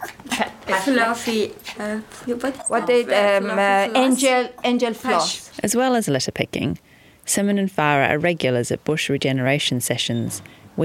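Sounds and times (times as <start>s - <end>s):
speech: 0.8s - 10.8s
dog whimpering and yipping: 1.1s - 3.4s.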